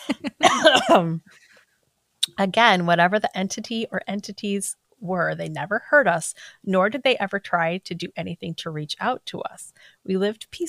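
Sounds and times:
person coughing: 0.0s - 1.2s
speech: 0.1s - 1.4s, 2.4s - 10.6s.

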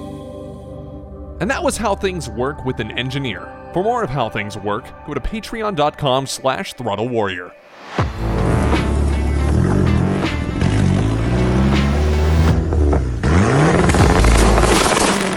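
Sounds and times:
speech: 1.4s - 8.3s
big-turbo Dodge Neon SRT-4 car engine revving hard: 8.0s - 15.3s.

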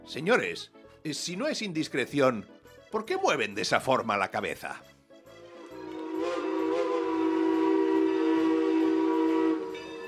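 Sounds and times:
speech: 0.0s - 4.9s
train whistle from a slow badly delayed train: 5.4s - 10.0s.

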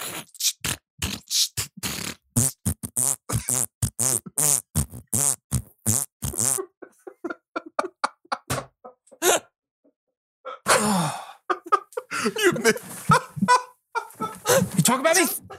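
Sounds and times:
mouth fart noises in a rap-like rhythm: 0.0s - 6.8s
breathy laughter-like noise: 6.3s - 9.5s, 10.5s - 15.5s
speech: 12.2s - 12.9s, 15.0s - 15.5s.

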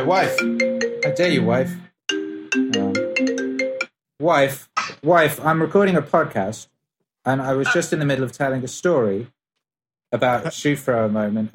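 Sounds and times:
speech: 0.0s - 1.9s, 4.2s - 9.4s, 10.1s - 11.5s
melodic phone ringtone: 0.0s - 3.9s.

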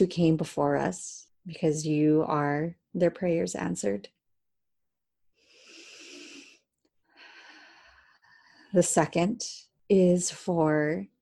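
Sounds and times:
speech: 0.0s - 4.2s, 8.7s - 11.1s
slow deep breathing during a guided breathing exercise: 5.4s - 8.7s.

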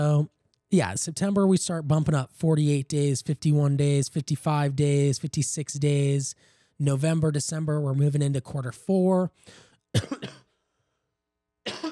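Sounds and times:
speech: 0.0s - 10.4s
person coughing: 9.5s - 10.6s, 11.7s - 11.9s.

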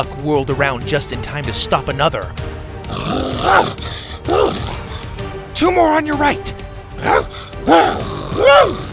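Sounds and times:
speech: 0.0s - 4.6s, 5.6s - 8.9s
creature snarling and growling during an attack: 2.8s - 5.2s, 7.0s - 8.9s
man shouting urgently: 3.0s - 4.8s, 5.6s - 8.9s.

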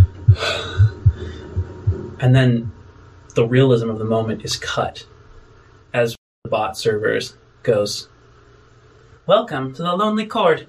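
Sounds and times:
soft breathy rush: 0.0s - 2.2s
deep heartbeat heard in the ears: 0.0s - 2.8s
speech: 2.2s - 2.8s, 3.4s - 5.1s, 5.9s - 8.1s, 9.3s - 10.6s.

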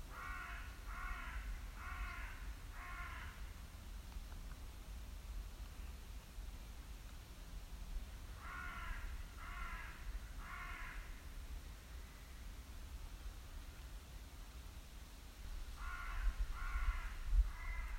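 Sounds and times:
steady low rumble of wind: 0.0s - 17.9s
raven cawing while flying above the treetops: 0.1s - 3.5s, 8.4s - 11.2s, 15.8s - 17.9s.

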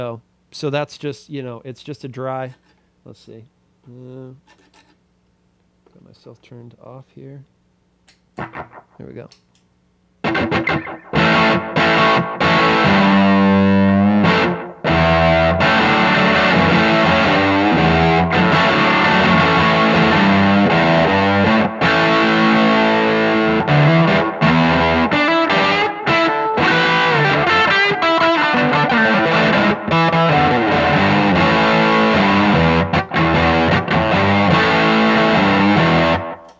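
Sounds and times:
speech: 0.0s - 4.8s, 6.0s - 7.5s, 8.5s - 9.4s
overdriven electric guitar through a pedal into an amp playing rock chords and riffs: 8.4s - 9.0s, 10.2s - 36.5s.

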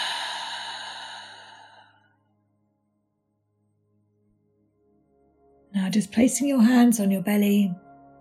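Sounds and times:
slow deliberate exhale during breathing exercise: 0.0s - 2.1s
speech: 5.8s - 7.8s.

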